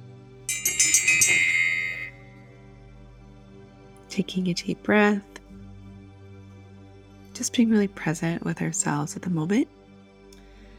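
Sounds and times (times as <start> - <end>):
bright meditation bell ringing: 0.5 - 2.6
speech: 4.2 - 5.4, 7.4 - 9.8.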